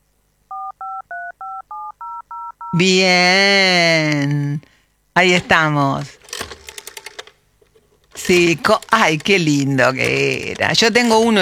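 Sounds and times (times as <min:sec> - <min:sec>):
telephone touch-tone dialing beeps: 0:00.5 - 0:02.8
speech: 0:02.7 - 0:06.2, 0:08.3 - 0:11.4.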